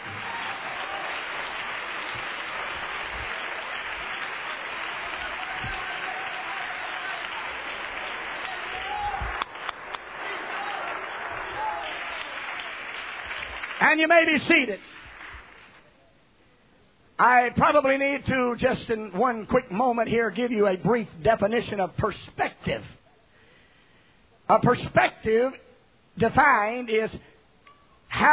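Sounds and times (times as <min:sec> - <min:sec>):
crowd clapping in worship: 0:00.0 - 0:15.9
speech: 0:13.8 - 0:15.0, 0:17.2 - 0:23.0, 0:24.5 - 0:25.6, 0:26.2 - 0:27.3, 0:28.1 - 0:28.3.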